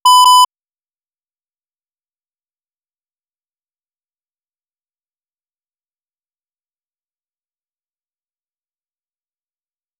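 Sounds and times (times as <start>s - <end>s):
calibration signal at 96 kHz 16-bit: 0.0s - 0.5s.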